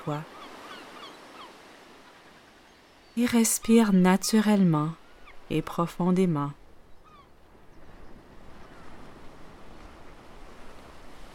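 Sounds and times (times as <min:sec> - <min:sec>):
speech: 0:00.0 - 0:00.3, 0:03.2 - 0:06.6
quiet ocean surf: 0:00.0 - 0:11.3
faint bird calls: 0:00.2 - 0:03.2, 0:06.9 - 0:09.2.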